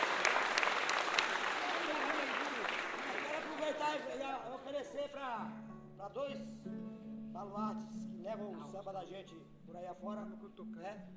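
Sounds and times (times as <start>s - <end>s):
crowd voices: 0.0s - 4.1s
audience applause at a samba performance: 0.0s - 4.2s
speech: 4.0s - 11.1s.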